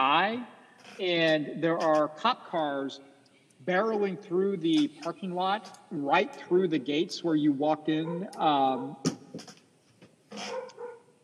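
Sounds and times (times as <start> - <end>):
speech: 0.0 - 9.6
dog barking outdoors in a parking lot: 7.9 - 9.0, 10.4 - 11.0.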